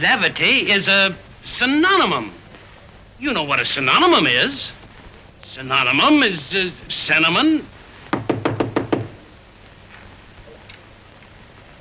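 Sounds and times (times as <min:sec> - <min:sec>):
speech: 0:00.0 - 0:02.4, 0:03.2 - 0:04.8, 0:05.5 - 0:07.7
knocking: 0:08.1 - 0:09.3.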